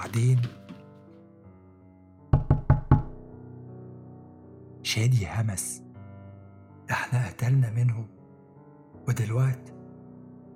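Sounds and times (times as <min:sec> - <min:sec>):
speech: 0:00.1 - 0:00.6, 0:04.9 - 0:05.9, 0:06.9 - 0:08.2, 0:09.0 - 0:09.8
heavy footsteps climbing entrance stairs: 0:02.4 - 0:03.2.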